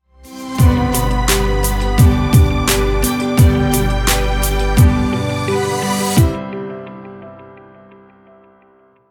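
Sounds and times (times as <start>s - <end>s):
happy travel vlog hip hop music: 0.2s - 6.7s.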